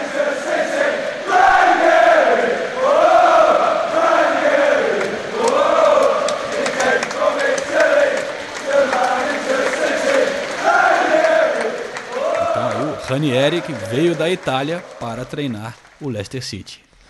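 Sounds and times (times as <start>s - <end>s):
large crowd of football supporters singing a rhythmic chant for their Italian coach: 0.0s - 13.0s
stadium-like crowd roar: 0.0s - 15.5s
speech: 13.2s - 16.9s.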